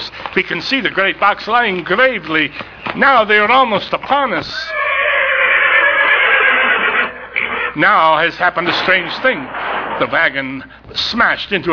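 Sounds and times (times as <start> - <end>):
speech: 0.4 - 4.8, 7.8 - 11.7
horses neighing as they tear loose and bolt from an overturned wagon in snow: 4.3 - 8.0.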